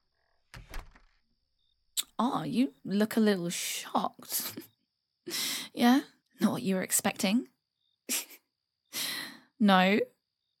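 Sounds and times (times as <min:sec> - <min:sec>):
door being unlocked and swung open: 0:00.5 - 0:01.2
speech: 0:02.2 - 0:04.7, 0:05.3 - 0:08.3, 0:09.6 - 0:10.2.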